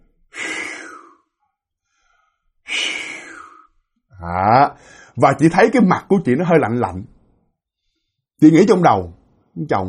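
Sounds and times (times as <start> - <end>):
sleeping person breathing heavily: 0.3 - 4.0, 4.8 - 5.2
speech: 4.2 - 7.2, 8.4 - 9.8.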